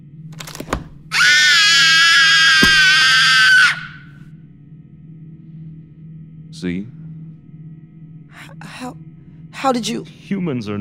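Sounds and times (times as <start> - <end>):
person screaming out of an open window: 1.2 - 4.0
small knocks: 2.6 - 3.0
speech: 6.6 - 7.0, 8.8 - 10.7.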